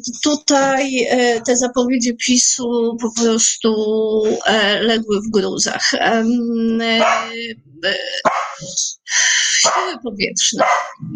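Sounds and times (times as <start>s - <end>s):
speech: 0.0s - 11.1s
dog barking and whining: 7.0s - 7.4s, 8.2s - 8.6s, 9.6s - 10.0s, 10.6s - 11.0s.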